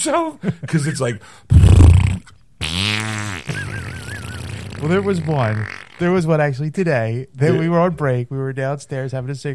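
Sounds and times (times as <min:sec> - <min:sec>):
speech: 0:00.0 - 0:02.0, 0:04.8 - 0:09.5
loud fart with low rumble and buzzy blast: 0:01.5 - 0:06.1.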